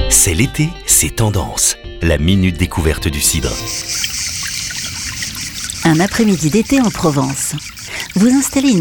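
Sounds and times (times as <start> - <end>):
speech: 0.1 - 4.4, 5.9 - 8.7
fountain trickling on a summer afternoon in Provence: 3.3 - 8.7.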